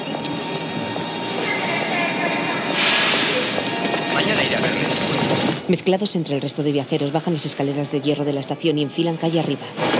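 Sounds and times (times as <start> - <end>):
metro train standing at an elevated station: 0.0 - 5.8
hissing burst: 2.7 - 3.6
speech: 5.7 - 9.8.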